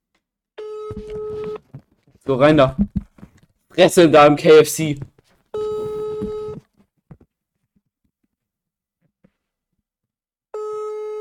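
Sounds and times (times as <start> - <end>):
telephone tone as a call is placed to a fast-food restaurant: 0.6 - 1.7, 5.6 - 6.6, 10.6 - 11.1
speech: 0.9 - 1.6, 2.2 - 3.0, 3.8 - 5.1.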